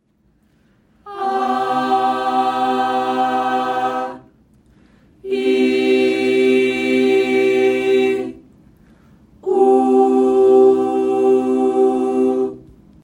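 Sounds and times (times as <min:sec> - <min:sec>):
group singing a C chord on ah ee oo vowels: 0:01.0 - 0:04.4, 0:05.2 - 0:08.5, 0:09.4 - 0:12.8.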